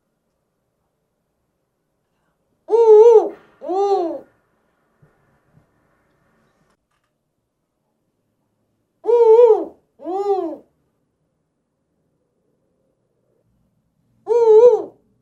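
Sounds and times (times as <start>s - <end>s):
spotted eagle-owl giving two-note hoots: 2.6s - 4.3s, 9.0s - 10.7s, 14.2s - 15.2s.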